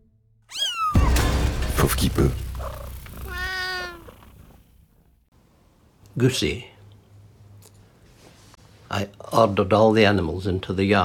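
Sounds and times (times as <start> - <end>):
cat meowing: 0.5 - 1.3, 2.6 - 4.6
speech: 1.8 - 2.4, 6.2 - 6.7, 9.0 - 11.0.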